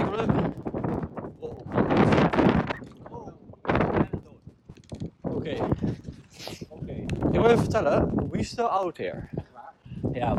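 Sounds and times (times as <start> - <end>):
gusts of wind buffeting the microphone: 0.0 - 10.3
speech: 7.5 - 9.4, 10.2 - 10.3.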